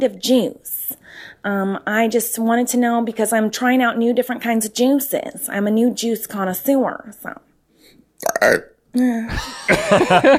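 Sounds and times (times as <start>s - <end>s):
speech: 0.0s - 7.5s, 8.2s - 10.3s
person burping: 8.2s - 10.0s
laughter: 9.3s - 10.3s.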